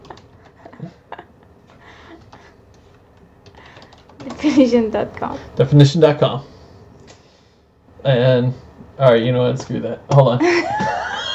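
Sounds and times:
computer keyboard typing: 0:00.0 - 0:00.9, 0:02.2 - 0:04.6
faint room hum: 0:00.0 - 0:11.3
speech: 0:04.3 - 0:06.5, 0:08.0 - 0:10.9.

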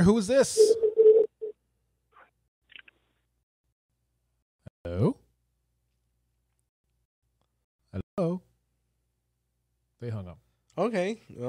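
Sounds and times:
speech: 0:00.0 - 0:00.9, 0:08.2 - 0:08.5, 0:10.0 - 0:11.4
telephone dialing tones: 0:00.6 - 0:01.3.

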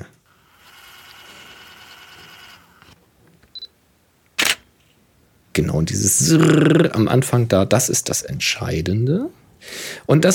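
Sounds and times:
camera lens with power zoom adapter zooming with motorized whine: 0:00.3 - 0:03.0
camera shutter firing with a sharp click: 0:04.4 - 0:04.7
speech: 0:05.6 - 0:10.3.

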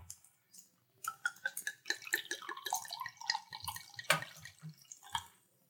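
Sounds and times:
alcoholic brew of brown sugar and dates pouring into a glass: 0:01.1 - 0:05.3.

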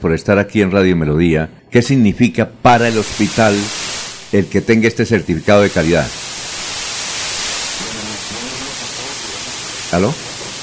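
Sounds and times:
speech: 0:00.0 - 0:06.2, 0:09.9 - 0:10.2
loud static hiss crackling on a phone line during a call to a radio station: 0:02.7 - 0:10.6.

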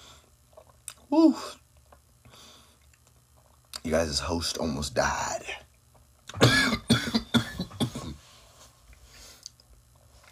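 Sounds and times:
speech: 0:01.1 - 0:01.6, 0:03.9 - 0:05.6
quieter breathing: 0:02.3 - 0:02.8, 0:08.2 - 0:09.5
harsh coughing fit: 0:06.3 - 0:08.2.

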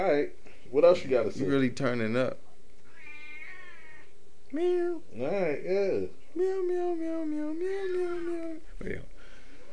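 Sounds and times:
speech: 0:00.0 - 0:02.4, 0:04.5 - 0:09.1
cat meowing: 0:02.8 - 0:04.2.

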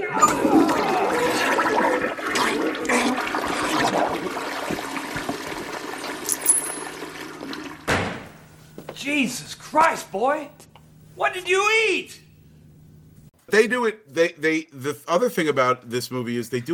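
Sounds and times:
toilet flushing: 0:00.0 - 0:07.9
brief thump: 0:07.9 - 0:08.3
speech: 0:09.2 - 0:12.2, 0:13.5 - 0:16.7.

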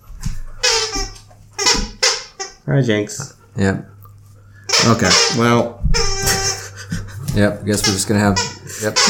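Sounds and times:
squeaky toy squeaking as a dog chews it: 0:00.6 - 0:02.7, 0:04.7 - 0:06.8, 0:07.7 - 0:09.0
speech: 0:02.7 - 0:04.0, 0:04.8 - 0:06.1, 0:07.4 - 0:09.0
laughter: 0:06.3 - 0:08.0.

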